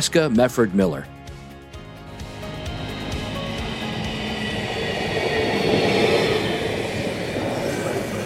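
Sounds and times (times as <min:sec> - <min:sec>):
speech: 0:00.0 - 0:01.2
light rail train in motion heard from inside the car: 0:02.0 - 0:08.2.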